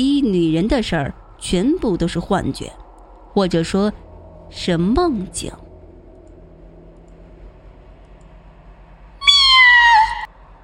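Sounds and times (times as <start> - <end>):
speech: 0.0 - 2.8, 3.4 - 5.6
cat meowing: 9.2 - 10.3.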